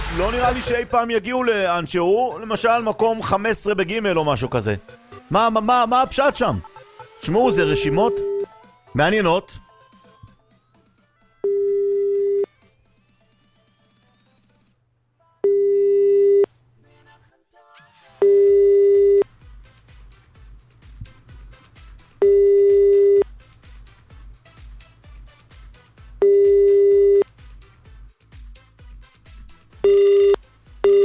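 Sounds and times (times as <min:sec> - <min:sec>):
speech: 0:00.2 - 0:08.3, 0:09.0 - 0:09.6
ringback tones of an unanswered outgoing phone call: 0:07.2 - 0:08.6, 0:11.4 - 0:12.5, 0:15.4 - 0:16.5, 0:18.2 - 0:19.2, 0:22.2 - 0:23.2, 0:26.2 - 0:27.2, 0:29.8 - 0:31.0.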